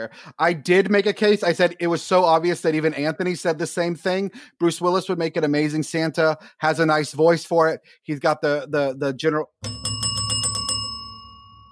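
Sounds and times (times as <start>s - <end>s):
speech: 0.0s - 10.0s
bell ringing: 9.6s - 11.7s.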